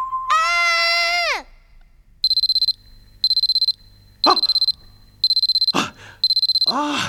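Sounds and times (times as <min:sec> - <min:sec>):
loud harmonic cries: 0:00.0 - 0:01.4
digital alarm clock beeping: 0:02.2 - 0:06.8.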